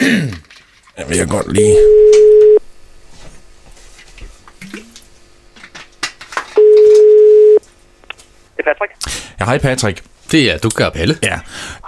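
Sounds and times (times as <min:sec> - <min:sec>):
speech: 0:01.0 - 0:02.5, 0:09.4 - 0:11.8
electronic telephone ringback tone while placing call: 0:01.8 - 0:02.6, 0:06.6 - 0:07.6.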